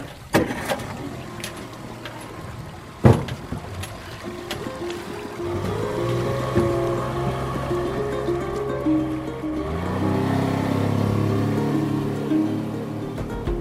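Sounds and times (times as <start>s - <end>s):
motorboat engine starting and droning: 0.0s - 13.5s
rushing water: 0.0s - 13.5s
sharp knocks: 3.0s - 4.9s, 13.1s - 13.5s.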